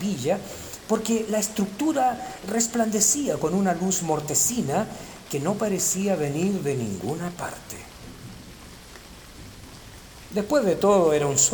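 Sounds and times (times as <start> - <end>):
speech: 0.0 - 7.9, 10.3 - 11.5
heavy rain: 0.0 - 11.5.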